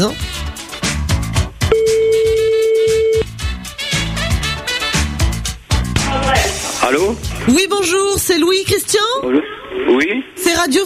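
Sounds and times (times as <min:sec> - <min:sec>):
speech: 0:00.0 - 0:00.3, 0:07.4 - 0:10.8
loud rhythmic music: 0:00.0 - 0:08.8
telephone ring tone on the caller's end: 0:01.7 - 0:03.2.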